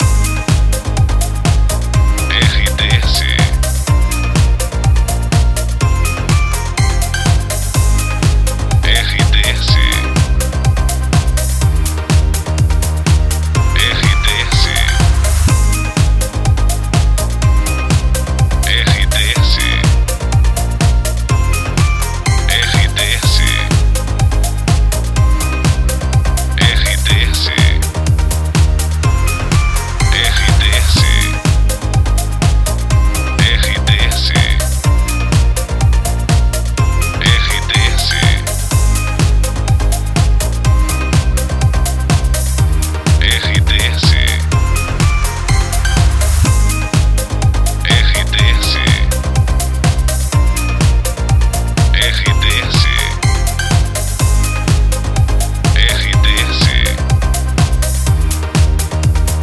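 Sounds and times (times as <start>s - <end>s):
background music for voice-over narration: 0.0s - 59.4s.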